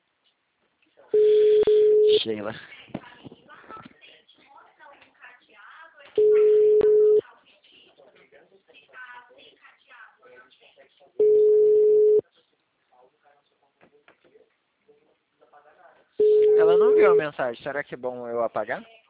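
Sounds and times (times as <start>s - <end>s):
telephone busy signal on a call to an engaged number: 1.2s - 2.2s, 6.2s - 7.2s, 11.2s - 12.2s, 16.2s - 17.2s
speech: 2.2s - 2.8s, 17.3s - 19.0s.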